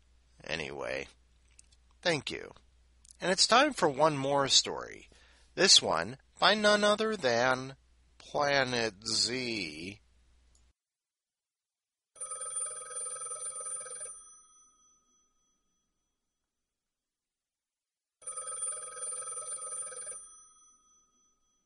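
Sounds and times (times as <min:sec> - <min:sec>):
speech: 0:00.8 - 0:01.2, 0:02.0 - 0:02.6, 0:03.2 - 0:10.0
telephone ringing with a bright metallic bell: 0:12.2 - 0:15.4, 0:18.2 - 0:21.6.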